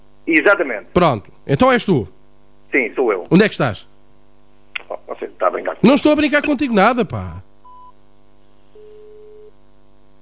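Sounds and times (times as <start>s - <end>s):
constant low electrical hum: 0.0s - 10.2s
speech: 0.3s - 3.9s, 5.2s - 7.4s
longer lower steady dropped-call telephone tone: 7.7s - 8.0s, 8.7s - 9.6s
short high telephone beep: 7.7s - 8.0s, 8.8s - 9.5s.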